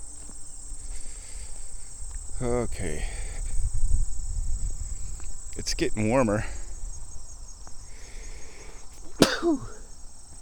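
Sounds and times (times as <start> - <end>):
high-pitched insect chirring outdoors: 0.0 - 10.4
speech: 2.4 - 3.2, 5.6 - 6.6, 9.4 - 9.8.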